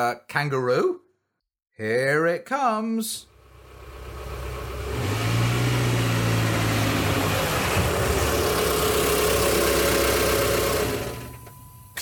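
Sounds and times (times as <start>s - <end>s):
speech: 0.0s - 1.0s, 1.8s - 3.3s
car engine rumbling: 3.3s - 11.6s.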